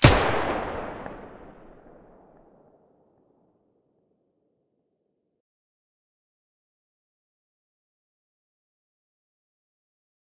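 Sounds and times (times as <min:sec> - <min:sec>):
gunshot from Vihr muzzle: 0:00.0 - 0:02.4.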